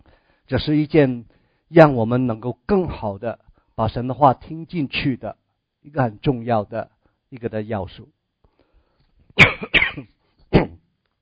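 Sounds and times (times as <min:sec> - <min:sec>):
speech: 0:00.5 - 0:08.2, 0:09.4 - 0:10.6
dry coughs: 0:09.4 - 0:10.9.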